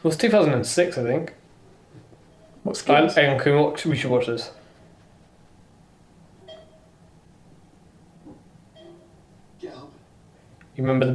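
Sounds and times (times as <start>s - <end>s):
speech: 0.0s - 1.4s, 2.6s - 4.6s, 10.8s - 11.1s
low hum: 0.0s - 11.1s
short electronic beeps: 6.4s - 6.9s, 8.8s - 9.2s.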